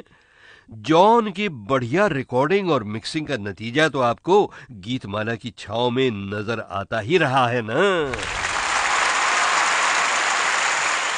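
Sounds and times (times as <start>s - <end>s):
speech: 0.0s - 8.5s
dense applause from many hands: 8.1s - 11.1s.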